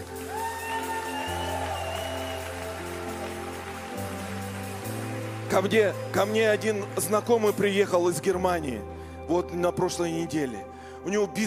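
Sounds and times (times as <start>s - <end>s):
audience clapping: 0.0s - 8.1s
speech: 5.5s - 11.4s.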